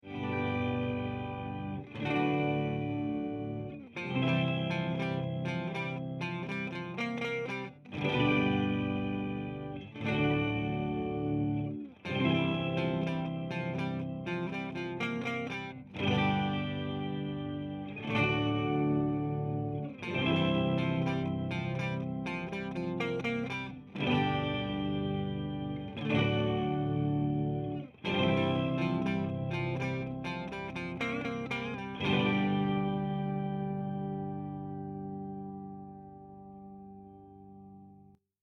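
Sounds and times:
clean octaver organ tone: 0.1s - 36.2s.

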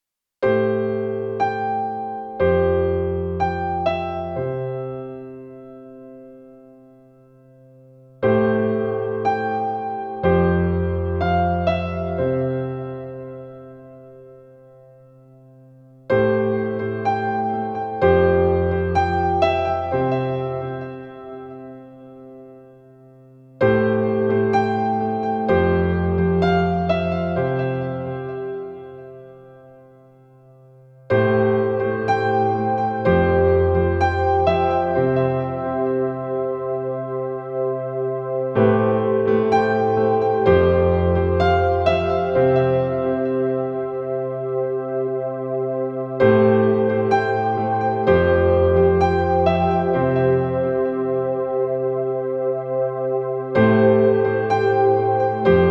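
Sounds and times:
grand piano with effects: 0.0s - 55.6s.

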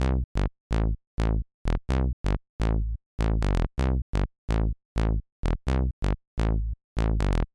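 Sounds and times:
synth bass: 0.0s - 7.5s.

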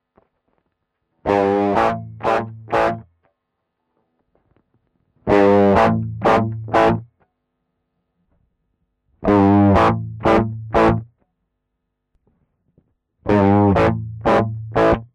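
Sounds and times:
guitar through Ibanez TS9DX overdrive pedal modes: 1.2s - 3.1s, 5.3s - 7.1s, 9.2s - 11.1s, 13.3s - 15.1s.

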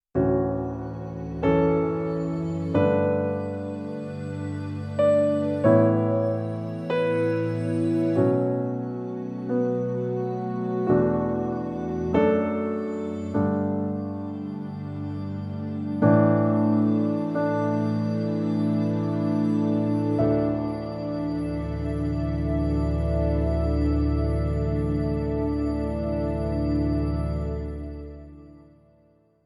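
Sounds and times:
Nord piano four-layer piano pad: 0.1s - 29.4s.

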